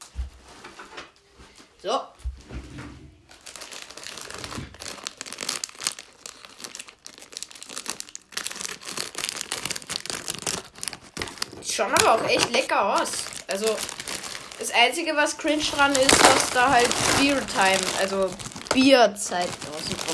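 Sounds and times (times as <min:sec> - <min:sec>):
speech: 0:01.8 - 0:02.1, 0:11.8 - 0:14.0, 0:14.6 - 0:20.1
crinkly plastic chip package being crumpled: 0:03.2 - 0:20.1
scissors cutting open plastic chip package: 0:08.4 - 0:14.0, 0:15.6 - 0:18.9.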